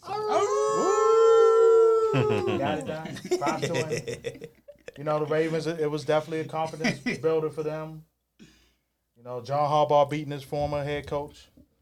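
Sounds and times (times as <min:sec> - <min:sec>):
wolf howl sound effect: 0:00.0 - 0:02.8
laughter: 0:02.0 - 0:05.7, 0:06.5 - 0:07.4
speech: 0:02.1 - 0:08.1, 0:09.2 - 0:11.5.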